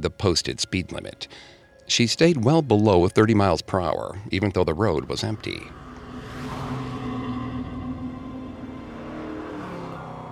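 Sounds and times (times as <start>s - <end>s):
speech: 0.0s - 5.8s
vintage muscle car engine roaring and revving: 4.9s - 10.3s.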